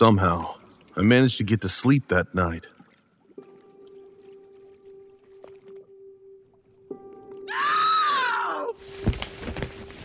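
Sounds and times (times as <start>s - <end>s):
speech: 0.0s - 2.8s
woman crying out at night: 7.5s - 8.8s.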